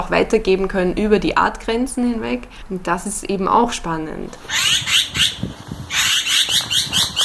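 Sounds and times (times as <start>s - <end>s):
speech: 0.1s - 5.6s
bird harsh rasping alarm call, likely crow: 4.5s - 7.2s.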